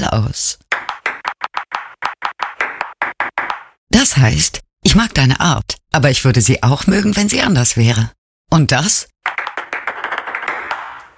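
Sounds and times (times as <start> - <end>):
speech: 0.0 - 0.7, 4.0 - 9.1
table tennis ball bouncing in Morse code: 0.7 - 3.8, 9.3 - 11.1.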